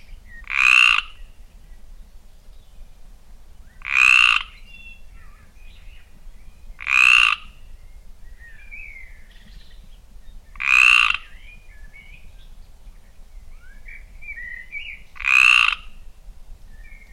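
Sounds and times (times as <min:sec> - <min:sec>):
soft bird chirps and warbles: 0:00.0 - 0:17.1
Mediterranean tree frog calling in the Limousin region: 0:00.4 - 0:01.2, 0:03.8 - 0:04.6, 0:06.8 - 0:07.6, 0:10.5 - 0:11.3, 0:15.1 - 0:16.0.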